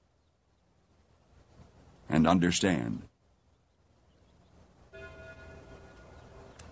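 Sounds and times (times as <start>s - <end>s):
speech: 2.1s - 3.1s
church bell ringing: 4.9s - 6.5s.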